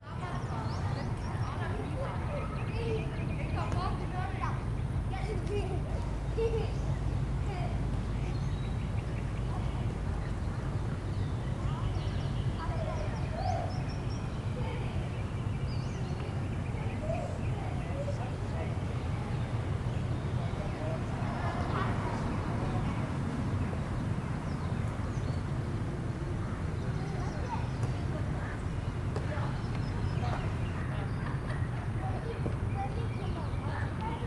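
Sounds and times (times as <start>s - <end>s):
children playing in a residential park: 0.0s - 25.3s, 26.0s - 34.2s
birds in a residential park: 0.0s - 34.2s
wind in a residential park: 0.0s - 34.2s.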